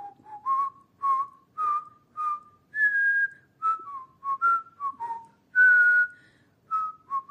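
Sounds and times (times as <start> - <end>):
whistled French song tune: 0.0 - 7.3.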